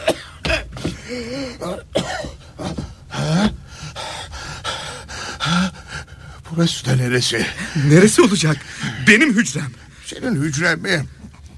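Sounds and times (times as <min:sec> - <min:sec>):
man clearing throat: 0:00.0 - 0:03.6
man coughing in rough throaty bursts: 0:00.0 - 0:03.6
speech: 0:01.1 - 0:02.3, 0:06.6 - 0:11.2.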